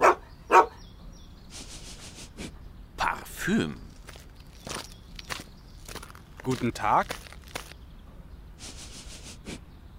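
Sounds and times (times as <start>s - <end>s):
dog barking: 0.0s - 0.8s
speech: 3.4s - 3.8s, 6.4s - 7.2s.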